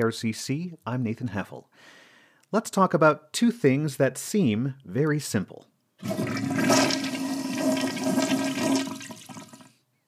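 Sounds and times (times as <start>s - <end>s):
speech: 0.0s - 6.9s
toilet flushing: 6.0s - 9.7s.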